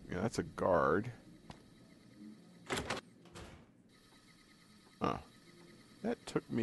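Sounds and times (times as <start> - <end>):
speech: 0.2 - 1.2, 5.0 - 5.3, 6.0 - 6.6
video game door opening with creak and heavy clunk: 2.6 - 3.8.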